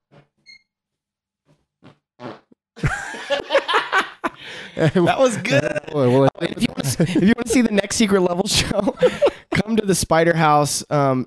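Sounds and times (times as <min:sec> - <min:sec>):
short quiet fart sounds: 0:01.5 - 0:02.6
crowd laughing and cheering: 0:02.8 - 0:07.9
speech: 0:04.8 - 0:11.2.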